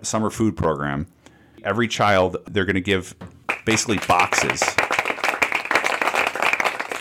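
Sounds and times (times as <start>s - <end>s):
speech: 0.0s - 4.8s
crowd applauding: 3.5s - 6.9s.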